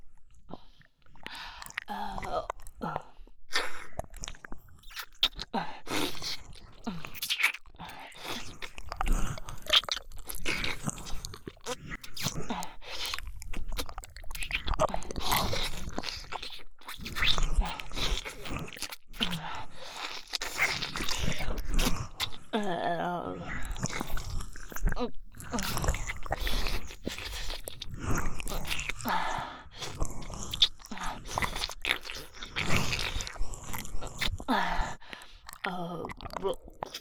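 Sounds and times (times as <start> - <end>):
person biting and chewing food while tasting it: 0.8 - 2.8, 3.6 - 22.3, 23.6 - 36.9.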